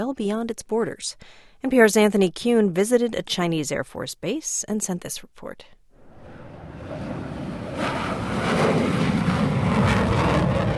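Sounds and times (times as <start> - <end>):
speech: 0.0 - 5.8
fighter jets flying past in formation: 6.0 - 10.7.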